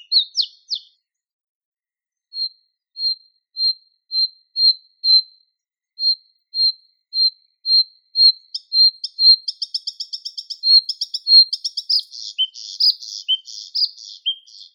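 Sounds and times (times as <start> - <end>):
Bluethroat Luscinia svecica song with chirps and metallic trill: 8.6 - 14.7.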